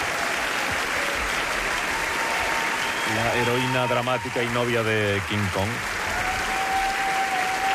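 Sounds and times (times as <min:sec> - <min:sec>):
dense applause from a theatre audience: 0:00.0 - 0:07.7
speech: 0:03.2 - 0:06.0.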